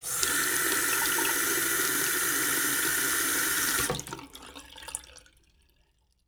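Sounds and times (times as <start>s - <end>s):
sink filling with liquid: 0.0s - 5.2s.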